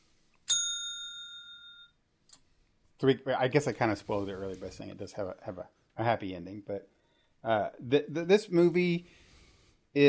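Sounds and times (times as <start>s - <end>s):
bright bell ding: 0.5s - 2.0s
speech: 3.0s - 9.2s.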